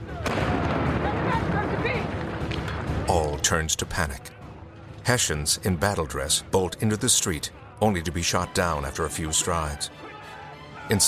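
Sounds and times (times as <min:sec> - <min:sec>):
cannons firing in battle from high ground at the edge of a town: 0:00.2 - 0:03.0
speech: 0:03.5 - 0:04.4, 0:05.1 - 0:10.0, 0:10.9 - 0:11.0.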